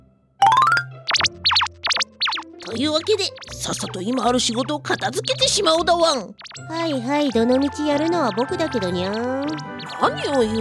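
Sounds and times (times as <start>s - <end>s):
quick rising electronic chirp: 0.4s - 5.7s, 6.4s - 6.7s, 7.5s - 10.5s
speech: 2.7s - 10.5s.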